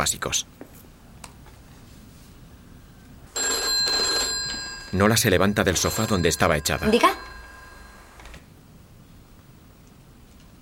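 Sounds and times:
speech: 0:00.0 - 0:00.7, 0:04.9 - 0:07.2
telephone ringing with bright electronic high tones: 0:03.3 - 0:08.4
call dialed on a mobile phone: 0:03.4 - 0:08.4.

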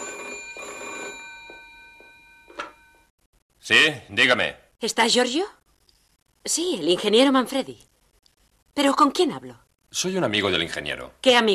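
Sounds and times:
telephone ringing with a bright metallic tone at the end of a hallway: 0:00.0 - 0:03.1
speech: 0:03.7 - 0:05.6, 0:06.4 - 0:07.9, 0:08.8 - 0:11.5.

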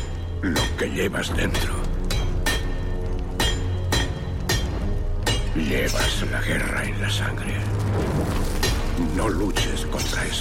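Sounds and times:
hammer striking red-hot iron forged into a large machete in a smithy: 0:00.0 - 0:05.9
speech: 0:00.4 - 0:01.9, 0:05.6 - 0:10.3.

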